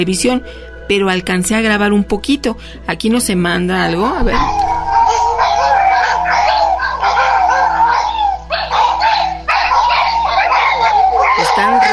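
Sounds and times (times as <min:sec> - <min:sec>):
speech: 0:00.0 - 0:04.7
several dogs barking and howling restlessly: 0:03.8 - 0:11.9.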